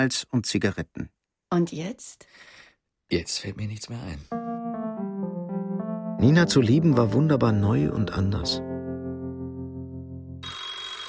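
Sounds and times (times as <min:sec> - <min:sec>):
speech: 0:00.0 - 0:04.4, 0:06.2 - 0:08.7
telephone ringing: 0:10.4 - 0:11.0.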